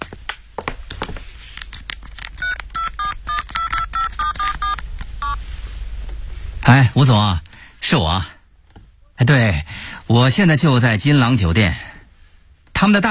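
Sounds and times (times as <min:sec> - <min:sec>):
clicks and handling noise of a touch-tone phone: 0:01.8 - 0:05.1
touch-tone phone dialing beeps: 0:02.4 - 0:05.4
speech: 0:06.6 - 0:08.4, 0:09.2 - 0:11.9, 0:12.8 - 0:13.0.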